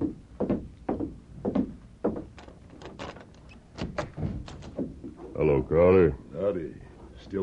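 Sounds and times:
dull thumps on a hotel room door: 0.0s - 2.6s, 3.8s - 5.2s
hotel room door latch clicking and rattling as it swings open: 2.4s - 4.7s
speech: 5.4s - 7.4s.

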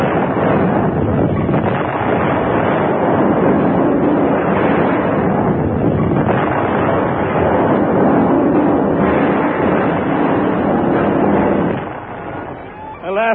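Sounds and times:
loud explosion set off by a lit fuse: 0.0s - 13.3s.

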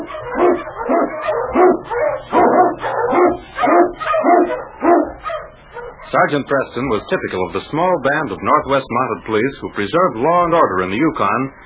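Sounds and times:
Eskimo lead dog husky barking in storm and snow in the Yukon: 0.0s - 7.2s
speech: 6.2s - 11.6s.

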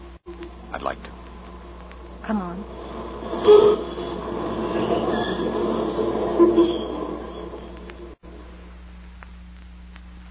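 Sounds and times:
brief metallic whines of a subway train: 0.0s - 8.6s
subway train rumbling on rails: 0.6s - 8.2s
speech: 0.8s - 1.2s, 2.2s - 4.0s, 6.4s - 6.8s.

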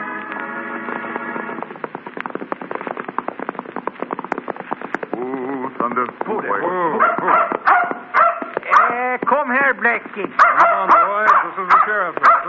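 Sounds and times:
rapid clattering: 0.7s - 10.4s
dog whimpering and barking: 10.4s - 12.4s.

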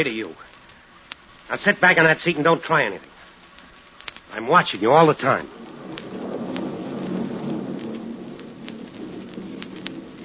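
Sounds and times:
speech: 0.0s - 0.6s, 1.5s - 3.1s, 4.3s - 5.7s
steady dense rain pouring in a thunderstorm: 0.0s - 10.2s
continuous low rumble of thunder: 4.8s - 10.2s.

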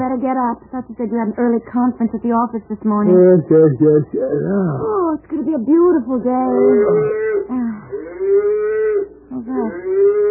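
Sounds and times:
speech: 0.2s - 7.6s
cow mooing: 6.5s - 10.2s.

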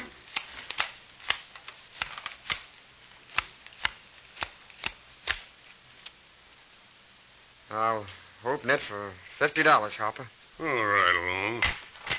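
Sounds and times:
playing cards shuffled and dealt for a poker game: 0.0s - 2.7s, 3.3s - 6.2s
speech: 7.7s - 11.8s.

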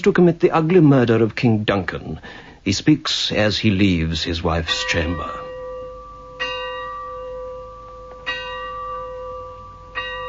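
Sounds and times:
speech: 0.0s - 5.4s
church bell tolling: 4.6s - 10.2s.

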